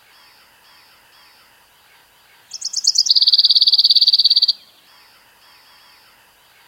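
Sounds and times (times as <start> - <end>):
Common chaffinch singing a rattling trill: 2.4 - 5.0.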